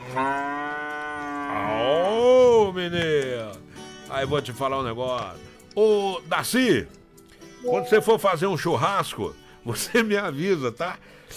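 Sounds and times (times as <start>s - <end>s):
herd of Nelore cattle mooing: 0.0s - 2.8s
speech: 0.2s - 0.4s, 4.2s - 7.0s, 7.6s - 11.3s.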